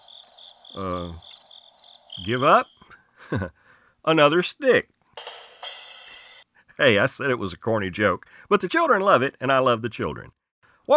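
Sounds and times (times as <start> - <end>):
crickets chirping in high continuous trill: 0.0 - 3.0
speech: 0.8 - 1.3, 2.2 - 5.3, 6.8 - 10.9.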